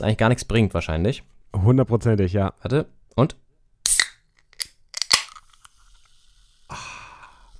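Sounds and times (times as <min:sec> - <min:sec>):
speech: 0:00.0 - 0:03.4
drink can cracked open with pop and hiss: 0:03.9 - 0:05.6.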